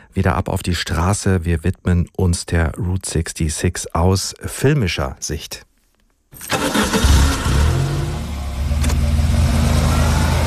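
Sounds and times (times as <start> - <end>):
speech: 0.2 - 5.7, 6.3 - 7.3
car engine starting and driving in a film soundtrack: 6.5 - 10.4.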